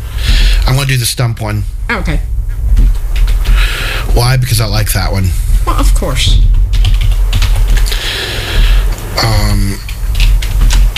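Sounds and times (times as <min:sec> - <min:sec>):
low steady hum: 0:00.0 - 0:10.9
speech: 0:00.7 - 0:02.9, 0:04.2 - 0:06.6, 0:09.2 - 0:09.9
fingers typing on a computer keyboard: 0:06.7 - 0:08.1, 0:09.4 - 0:10.9.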